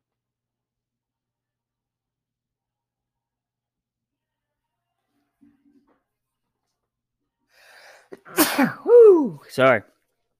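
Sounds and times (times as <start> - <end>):
person sneezing: 8.1 - 9.4
speech: 8.2 - 9.9.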